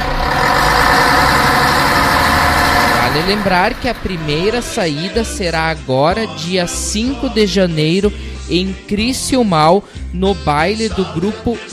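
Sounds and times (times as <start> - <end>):
bus engine rumbling at idle: 0.0 - 5.6
speech: 3.2 - 11.7.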